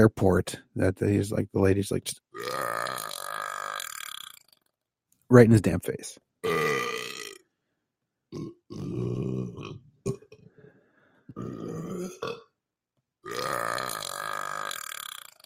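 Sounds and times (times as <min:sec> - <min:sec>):
speech: 0:00.0 - 0:03.0, 0:05.3 - 0:06.6
loud drawn-out burps: 0:02.4 - 0:04.6, 0:06.4 - 0:07.4, 0:08.3 - 0:10.5, 0:11.3 - 0:12.5, 0:13.2 - 0:15.4.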